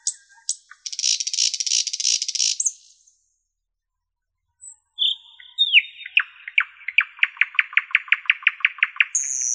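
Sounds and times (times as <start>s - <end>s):
nightingale song with whistled note and repeated chip notes: 0.0s - 3.4s, 4.6s - 9.5s.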